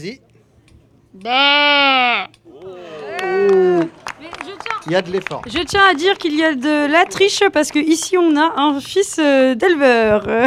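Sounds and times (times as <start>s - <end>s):
speech: 0.0s - 0.3s, 1.1s - 4.0s, 4.8s - 10.4s
child imitating sheep bleats: 1.2s - 3.4s
laughter: 1.3s - 10.4s.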